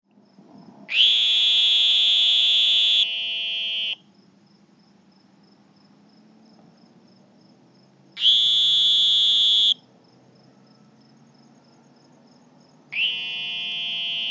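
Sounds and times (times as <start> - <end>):
Sonoran green toads calling together as a duo: 0.9 - 4.1, 8.2 - 9.8, 12.9 - 14.2.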